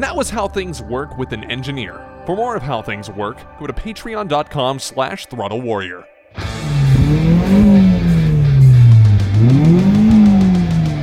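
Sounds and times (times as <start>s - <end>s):
speech: 0.0s - 7.7s
1997 Accord sedan engine revving: 6.4s - 11.0s.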